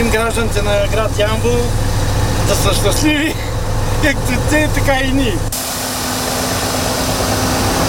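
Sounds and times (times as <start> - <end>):
speech: 0.0 - 3.4, 4.0 - 5.5
municipal water truck engine drone: 0.0 - 7.8
water spraying on hot town streets with rushing hiss: 5.6 - 7.8.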